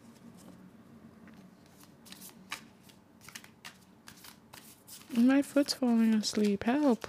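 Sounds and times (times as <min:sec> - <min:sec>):
low steady hum: 0:00.0 - 0:07.0
deck of cards being shuffled: 0:01.6 - 0:07.0
speech: 0:05.1 - 0:07.0.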